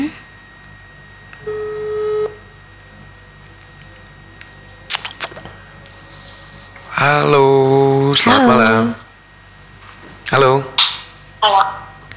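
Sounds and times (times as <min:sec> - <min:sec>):
telephone tone over a quiet line: 0:01.4 - 0:02.5
speech: 0:07.1 - 0:08.8, 0:10.3 - 0:10.7.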